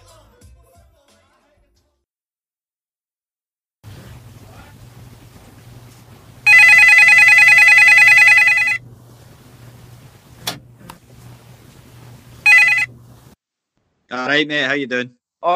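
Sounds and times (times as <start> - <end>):
telephone ringing: 6.4 - 8.9, 12.4 - 13.1
speech: 14.1 - 15.5.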